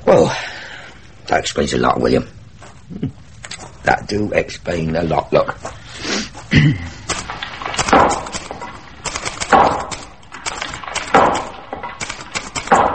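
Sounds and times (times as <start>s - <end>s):
speech: 0.1s - 0.5s, 1.3s - 3.2s, 3.8s - 5.6s
busy clatter of construction noise: 6.5s - 12.9s
drilling: 7.1s - 12.9s
heavy banging and hammering: 7.1s - 12.9s.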